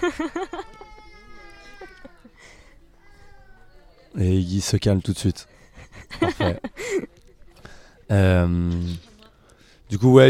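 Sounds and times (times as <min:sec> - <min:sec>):
laughter: 0:00.0 - 0:02.5, 0:05.6 - 0:07.3
speech: 0:00.1 - 0:00.7, 0:04.2 - 0:05.6, 0:06.4 - 0:07.1, 0:08.1 - 0:09.1, 0:09.9 - 0:10.2
baby crying and whimpering: 0:00.1 - 0:03.8.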